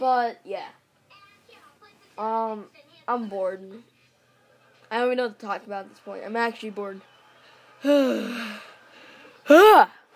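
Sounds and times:
speech: 0:00.0 - 0:00.8, 0:02.2 - 0:03.9, 0:04.9 - 0:07.1, 0:07.8 - 0:08.7, 0:09.5 - 0:10.0
loud vocalized yawn into a phone: 0:07.8 - 0:08.6, 0:09.5 - 0:09.9.

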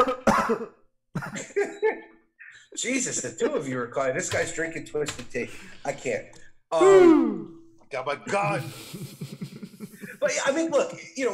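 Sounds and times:
loud raspy coughing: 0:00.0 - 0:02.6, 0:08.4 - 0:10.4
speech: 0:00.5 - 0:02.1, 0:02.8 - 0:09.6, 0:10.2 - 0:11.3
laughter: 0:08.2 - 0:11.3.

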